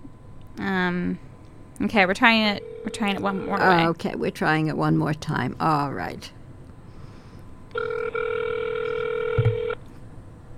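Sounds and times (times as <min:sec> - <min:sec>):
speech: 0:00.6 - 0:06.4
buzzing phone line ringback tone heard through the receiver: 0:02.5 - 0:03.8, 0:07.7 - 0:09.8.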